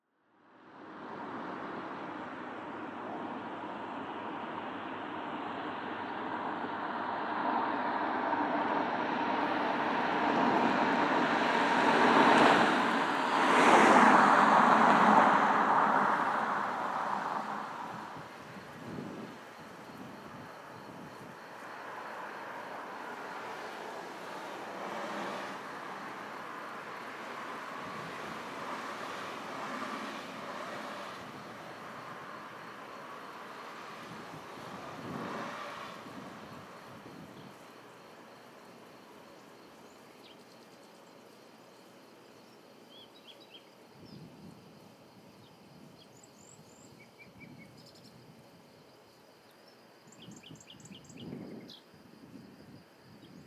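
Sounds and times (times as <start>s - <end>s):
cars: 0.4s - 39.8s.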